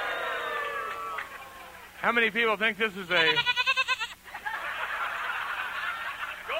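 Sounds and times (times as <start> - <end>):
laughter: 0.0 - 2.0, 4.0 - 6.5
speech: 2.0 - 3.6
goat giving a quavering bleat: 3.1 - 4.2.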